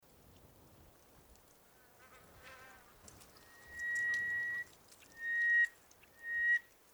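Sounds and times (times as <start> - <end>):
steady background hiss: 0.0 - 6.9
Greater hoopoe-lark whistling level pure notes at an oasis in Egypt: 3.4 - 6.7.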